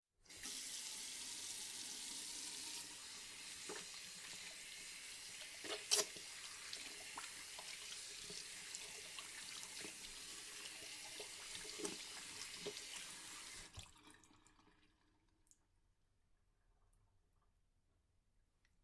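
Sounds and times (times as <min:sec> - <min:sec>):
hands washing: 0:00.3 - 0:14.0
running water while washing hands: 0:00.3 - 0:14.9.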